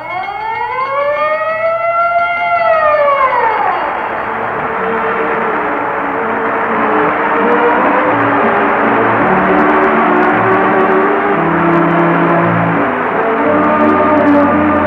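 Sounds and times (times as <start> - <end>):
loud high-pitched fire siren wailing: 0.0 - 14.8
bell ringing: 3.3 - 7.8.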